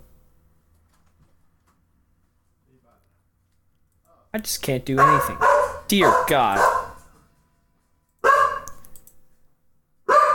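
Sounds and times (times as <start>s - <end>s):
speech: 4.3s - 6.8s
dog barking excitedly: 4.9s - 7.1s, 8.2s - 8.7s, 10.1s - 10.3s.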